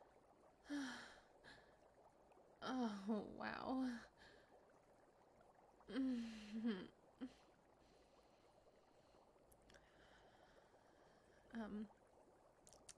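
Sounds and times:
liquid dripping and trickling out: 0.0 - 12.9
speech: 0.7 - 1.1, 2.6 - 4.1, 5.9 - 7.4.

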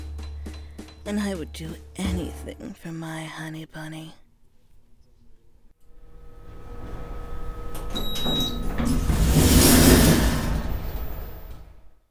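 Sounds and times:
speech: 1.0 - 4.2
elevator doors sliding open: 6.2 - 11.9.

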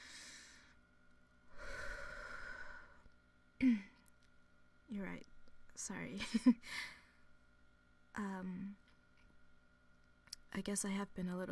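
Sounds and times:
deep breath: 1.5 - 3.1
speech: 4.9 - 7.0, 8.2 - 8.8, 10.6 - 11.4.

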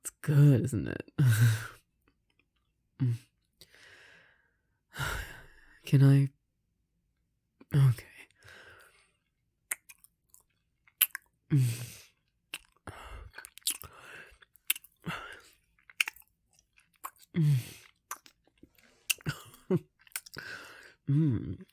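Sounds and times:
speech: 0.2 - 1.7, 3.0 - 3.3, 5.9 - 6.4, 7.7 - 8.1, 21.1 - 21.7
chewing and biting of sweet food while tasting it: 9.7 - 11.3, 12.5 - 20.5.

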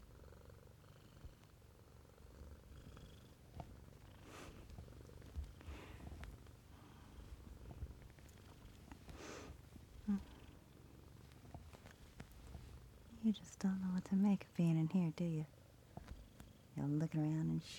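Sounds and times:
kitten purring: 0.0 - 17.7
speech: 13.3 - 15.6, 16.8 - 17.7.

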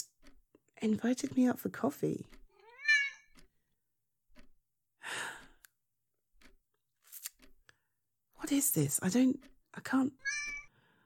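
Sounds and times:
speech: 0.8 - 2.4, 8.7 - 10.4
cat meowing: 2.6 - 3.3, 10.2 - 10.7.

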